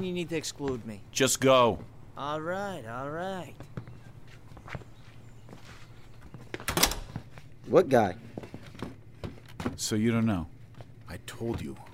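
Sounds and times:
speech: 0:00.0 - 0:03.8, 0:07.7 - 0:08.3, 0:09.7 - 0:10.5, 0:11.1 - 0:11.9
soft footsteps: 0:03.4 - 0:11.9
door being shut: 0:06.6 - 0:07.2.

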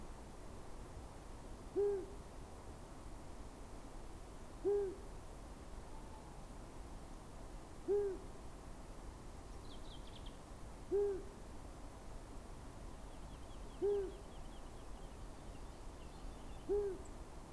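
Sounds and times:
long-eared owl hooting near a small Scots pine wood: 0:01.7 - 0:02.2, 0:04.6 - 0:05.1, 0:05.8 - 0:06.4, 0:07.8 - 0:08.3, 0:10.9 - 0:11.4, 0:13.7 - 0:14.5, 0:16.5 - 0:17.2
small birds chirping and trilling: 0:09.5 - 0:10.4, 0:13.0 - 0:17.2.

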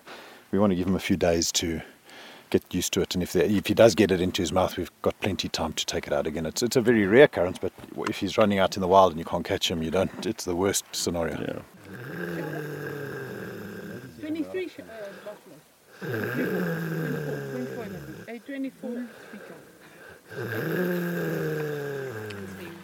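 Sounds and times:
speech: 0:00.5 - 0:01.9, 0:02.5 - 0:12.0, 0:14.5 - 0:19.7, 0:20.3 - 0:22.1
cheetah snoring: 0:11.8 - 0:14.4, 0:15.9 - 0:22.8.

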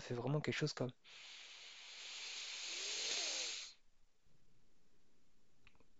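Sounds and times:
speech: 0:00.1 - 0:01.4
forced deep inhalation through the upper chest: 0:01.0 - 0:03.8.

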